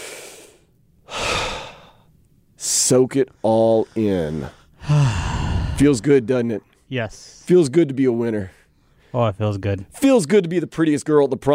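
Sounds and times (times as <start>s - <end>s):
deep breath: 0.0s - 2.1s, 3.3s - 6.2s
speech: 2.9s - 5.1s, 5.8s - 11.5s.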